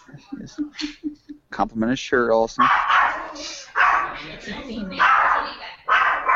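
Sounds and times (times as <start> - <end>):
speech: 0.1 - 2.8, 4.4 - 5.1
dog barking: 2.6 - 4.2, 5.0 - 6.3.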